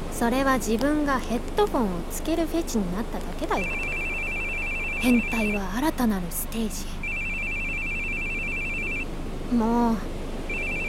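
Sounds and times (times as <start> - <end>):
low hum: 0.0 - 10.8
speech: 0.2 - 3.9, 5.0 - 7.0, 9.5 - 10.1
telephone ringing with a high electronic tone: 3.6 - 5.6, 7.0 - 9.1, 10.5 - 10.8.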